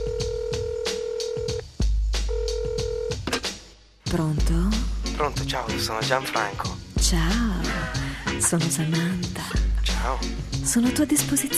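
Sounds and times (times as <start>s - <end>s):
telephone ringing tone heard down the line: 0.0s - 1.6s, 2.3s - 3.2s
speech: 4.1s - 11.5s.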